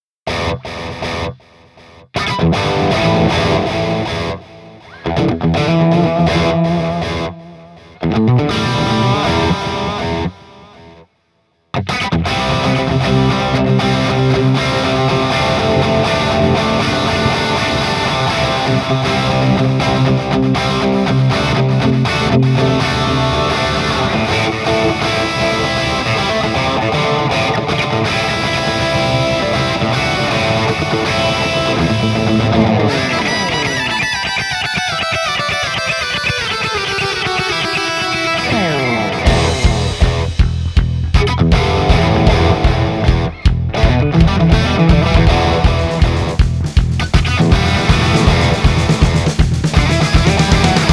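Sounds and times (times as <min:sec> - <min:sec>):
theatrical rock music: 0:02.2 - 0:10.4, 0:11.9 - 0:50.9.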